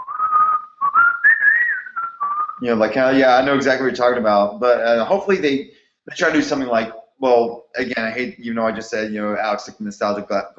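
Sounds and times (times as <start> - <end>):
calm whistled video game music melody: 0.0 - 2.7
speech: 2.6 - 10.5.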